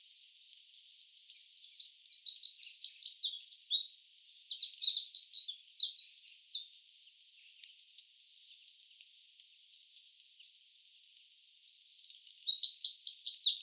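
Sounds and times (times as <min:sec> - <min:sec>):
Eurasian wren Troglodytes troglodytes trilling song: 0:00.0 - 0:06.7, 0:12.0 - 0:13.6.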